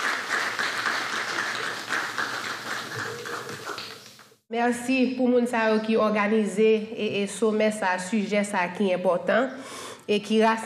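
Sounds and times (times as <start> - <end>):
crowd applauding for a woman from a foundation: 0.0 - 4.2
speech: 4.5 - 10.6.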